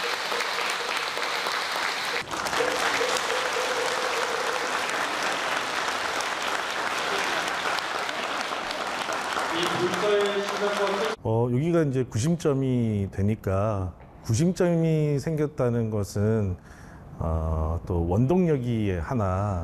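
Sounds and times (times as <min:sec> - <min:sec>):
tonal sounds: 0:00.0 - 0:07.5
crowd applause: 0:00.0 - 0:11.2
speech: 0:11.2 - 0:19.6.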